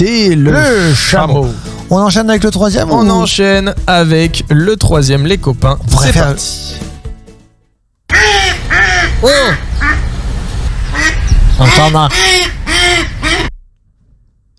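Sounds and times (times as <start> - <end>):
speech: 0.0 - 6.9, 8.1 - 10.0, 11.6 - 13.4
mallard duck quacking: 8.1 - 10.1, 10.9 - 13.6.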